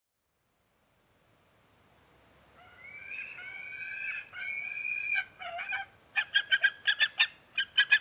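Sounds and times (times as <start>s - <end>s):
soft background hiss: 0.0s - 7.9s
Gyrfalcon making long strained whining notes: 2.6s - 7.9s.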